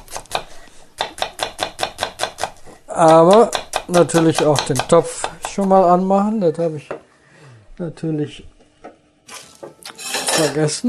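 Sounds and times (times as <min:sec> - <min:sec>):
onions being chopped with a knife on a cutting board: 0:00.0 - 0:05.8
speech: 0:03.0 - 0:06.9, 0:07.8 - 0:08.5, 0:10.4 - 0:10.8.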